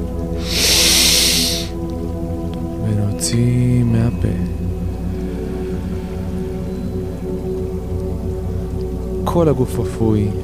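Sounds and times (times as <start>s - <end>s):
soft sustained music: 0.0s - 10.4s
deep inhale through the nose during a guided relaxation: 0.4s - 1.7s
speech: 3.3s - 4.7s, 9.4s - 10.4s.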